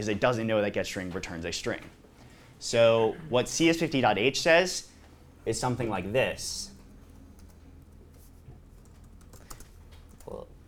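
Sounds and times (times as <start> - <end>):
speech: 0.0 - 2.0, 2.6 - 6.7
low hum: 0.0 - 10.6
computer keyboard typing of code: 6.8 - 10.5.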